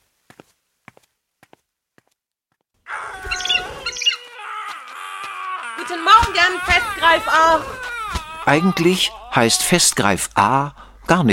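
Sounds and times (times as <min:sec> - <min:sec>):
footsteps walking outside in a garden: 0:00.0 - 0:09.2
bird-like chirping: 0:02.9 - 0:04.4
speech: 0:05.9 - 0:07.9, 0:08.5 - 0:11.3.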